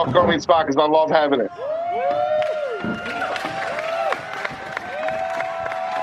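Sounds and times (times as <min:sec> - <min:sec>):
speech: 0:00.0 - 0:02.9
large wrestling crowd cheering: 0:01.5 - 0:06.0
shouts and whoops from wrestling crowd: 0:01.5 - 0:06.0.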